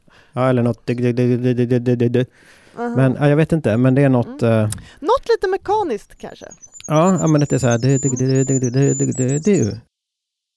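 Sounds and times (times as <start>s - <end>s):
speech: 0.4s - 9.9s
person imitating goldcrest song rhythm with the voice: 2.8s - 3.2s, 5.7s - 9.8s.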